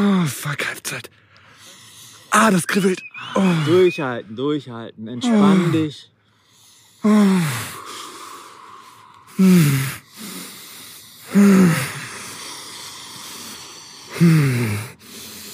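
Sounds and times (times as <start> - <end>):
speech: 0.0 - 1.2, 2.3 - 6.1, 7.0 - 7.8, 9.4 - 10.0, 11.3 - 12.0, 14.2 - 14.9
person breathing heavily in an ice bath: 1.2 - 2.4, 5.2 - 15.5.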